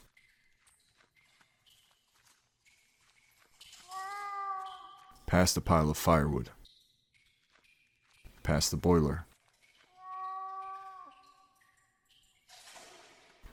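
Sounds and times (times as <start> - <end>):
footsteps walking through a basement: 0.0 - 5.3, 6.6 - 12.8
cat meowing behind wall: 3.9 - 5.2, 9.9 - 11.4
speech: 5.3 - 6.6, 8.5 - 9.3.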